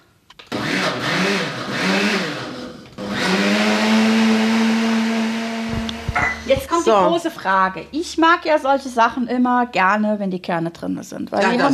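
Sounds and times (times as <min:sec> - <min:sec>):
blender puréeing preserved currants: 0:00.5 - 0:06.7
speech: 0:06.8 - 0:11.7.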